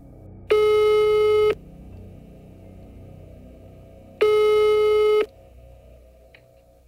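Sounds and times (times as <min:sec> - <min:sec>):
electronic telephone ringback tones over a phone line: 0:00.5 - 0:01.6, 0:04.2 - 0:05.3.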